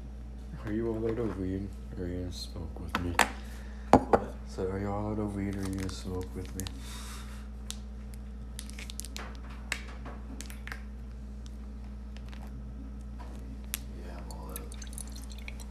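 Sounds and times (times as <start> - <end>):
room hum: 0.0 - 15.6
speech: 0.6 - 3.5, 4.1 - 7.1
Gatorade poured into a cup: 14.2 - 15.6.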